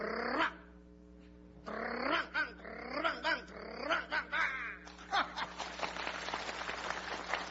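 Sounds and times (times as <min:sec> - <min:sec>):
man's voice imitating a wolf-dog barking: 0:00.0 - 0:00.7, 0:01.7 - 0:04.8
audience clapping: 0:05.4 - 0:07.4.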